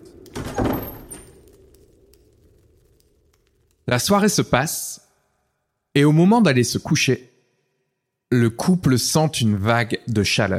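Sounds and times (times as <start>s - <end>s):
door pushed shut with a muffled thump: 0.3s - 1.3s
speech: 3.9s - 5.0s, 6.0s - 7.3s, 8.3s - 10.5s.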